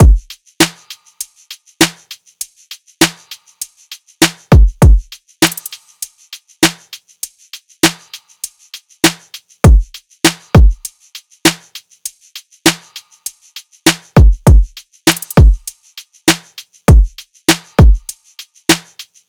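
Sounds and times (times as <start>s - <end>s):
full drum loop: 0.0s - 0.9s, 4.2s - 5.8s, 9.1s - 10.8s, 13.9s - 15.7s, 16.3s - 18.9s.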